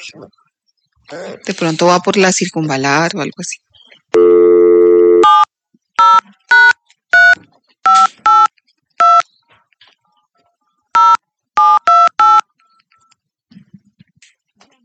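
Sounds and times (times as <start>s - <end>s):
speech: 0.0s - 0.4s, 1.1s - 4.4s
touch-tone dialing beeps: 4.1s - 9.2s, 11.0s - 13.2s.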